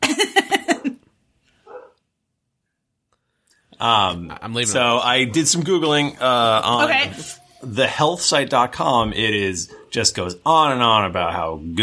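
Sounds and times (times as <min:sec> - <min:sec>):
dogs barking: 0:01.6 - 0:02.0, 0:09.7 - 0:10.0
speech: 0:03.8 - 0:11.8.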